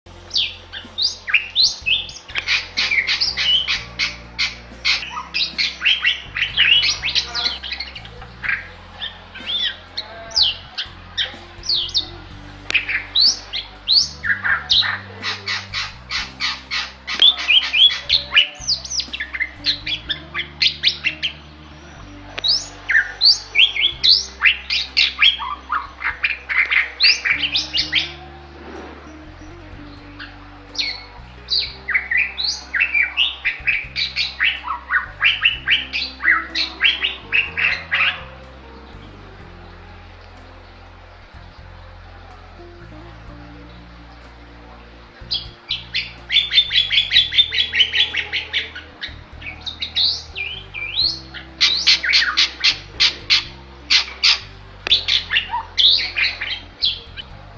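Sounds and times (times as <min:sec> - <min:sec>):
Bali myna calling: 0:00.2 - 0:28.5, 0:29.1 - 0:39.0, 0:45.2 - 0:57.5.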